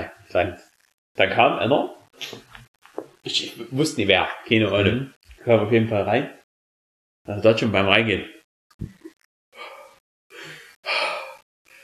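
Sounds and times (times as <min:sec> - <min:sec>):
speech: 0:00.3 - 0:02.5, 0:03.2 - 0:06.4, 0:07.2 - 0:09.0
person imitating heavy breathing: 0:09.6 - 0:11.8.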